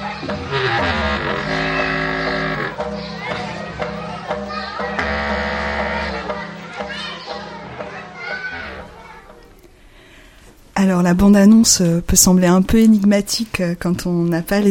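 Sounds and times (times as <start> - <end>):
many children shouting and chattering in a school playground at recess: 0.0 - 10.0
speech: 10.8 - 14.6.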